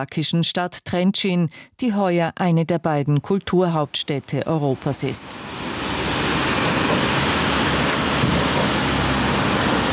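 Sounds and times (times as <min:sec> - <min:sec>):
speech: 0:00.0 - 0:05.9
strong wind roaring across the microphone on a river bridge: 0:05.2 - 0:09.9.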